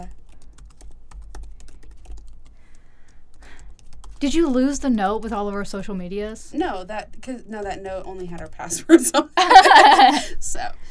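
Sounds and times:
typing on a computer keyboard: 0.0 - 5.4, 7.1 - 8.8
low hum: 0.0 - 10.8
speech: 4.2 - 10.8
laughter: 8.9 - 10.3.

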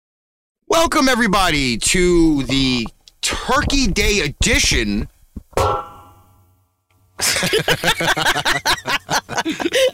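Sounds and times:
speech: 0.7 - 5.8, 7.2 - 9.9
gong-like metallic clang: 5.6 - 6.6
several people laughing: 7.2 - 9.9.

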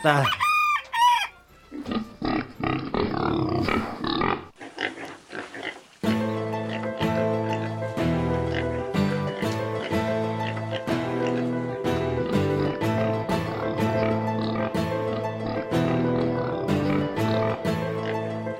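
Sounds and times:
speech: 0.0 - 0.4
rooster crowing and clucking: 0.0 - 1.6
frantic farmyard squawking and squealing: 0.0 - 11.5, 12.2 - 18.3.

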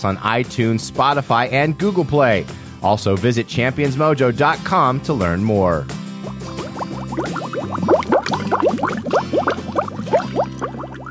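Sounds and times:
speech: 0.0 - 6.0
water bubbling: 6.2 - 11.0.

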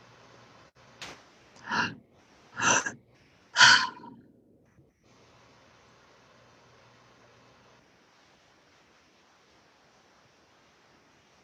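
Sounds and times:
forceful breathy exhalations: 1.6 - 2.0, 2.6 - 3.0, 3.6 - 4.2.

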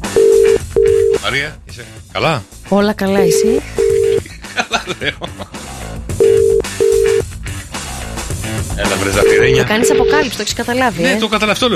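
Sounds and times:
telephone ringback tone during outgoing call: 0.0 - 1.2, 3.2 - 4.2, 6.2 - 7.2, 9.2 - 10.3
speech: 1.3 - 3.8, 4.7 - 5.7, 8.8 - 11.7
laughter: 3.6 - 5.6.

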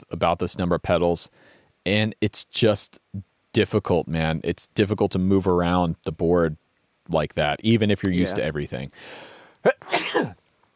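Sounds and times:
speech: 0.0 - 10.4
sneeze: 9.7 - 10.4.

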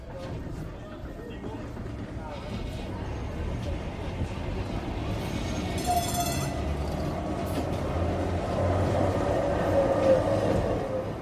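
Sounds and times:
tram rattling over worn rails: 0.0 - 11.2
metallic squeals from tram wheels: 5.4 - 7.1.

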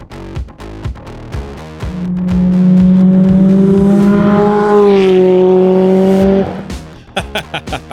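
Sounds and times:
Honda S2000 race car racing a hill climb: 1.1 - 7.0
Honda S2000 race car exhaust crackling pops: 1.3 - 6.7
laughter: 7.0 - 7.9.

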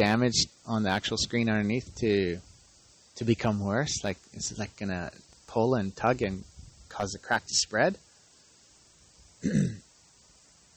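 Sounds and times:
speech: 0.0 - 2.5, 3.2 - 8.1, 9.4 - 9.8
short gruff throat clearing: 9.4 - 9.9.

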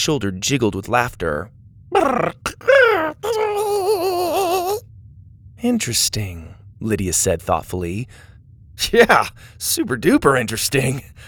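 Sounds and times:
speech: 0.0 - 3.3, 5.6 - 11.2
person fake snoring with grunting snorts and a drawn-out groan: 2.0 - 4.8.

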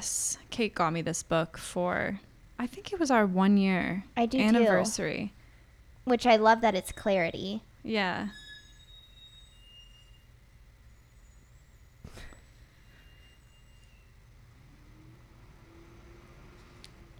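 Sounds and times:
speech: 0.0 - 5.4, 6.0 - 8.4
high squealing brake-like tones: 6.2 - 17.1
heavy truck rumbling past outside: 14.4 - 17.1.

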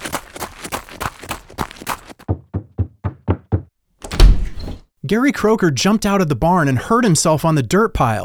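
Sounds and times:
person running breathlessly through a door: 0.0 - 3.7
sharp evenly spaced knocking thuds: 2.3 - 4.8
house front door bursting open with a loud bang: 4.0 - 4.8
speech: 5.1 - 8.2.

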